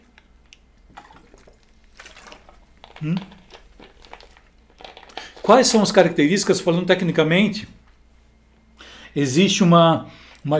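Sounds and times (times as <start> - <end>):
low steady hum: 0.0 - 10.5
person sipping and swallowing water: 0.6 - 5.7
speech: 3.0 - 3.4, 5.5 - 7.8, 9.2 - 10.5.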